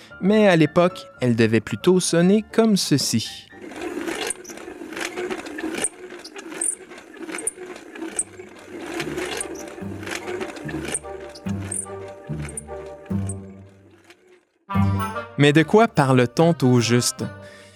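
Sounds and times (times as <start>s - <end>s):
speech: 0.2s - 3.5s, 15.4s - 17.5s
old hand-cranked Archimedes screw pump with wooden mechanism churning: 3.5s - 14.6s
wooden mechanism of Archimedes screw pump rattling and clacking: 3.5s - 14.6s
low groaning creaks of Archimedes screw pump: 3.6s - 14.6s.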